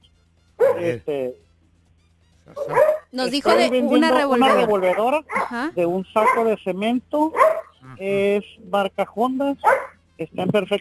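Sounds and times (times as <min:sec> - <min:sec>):
small dog yapping over a telephone line: 0:00.6 - 0:01.0, 0:02.6 - 0:03.8, 0:04.4 - 0:05.6, 0:06.2 - 0:06.5, 0:07.4 - 0:07.8, 0:09.6 - 0:10.0
speech: 0:00.8 - 0:01.4, 0:02.5 - 0:10.7.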